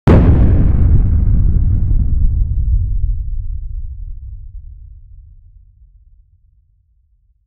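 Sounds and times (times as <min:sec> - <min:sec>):
underwater explosion with a deep muffled boom: 0:00.1 - 0:04.8.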